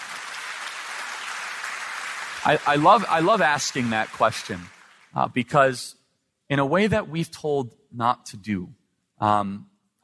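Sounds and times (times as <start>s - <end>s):
audience applause in a church: 0.0s - 5.3s
speech: 2.4s - 10.0s.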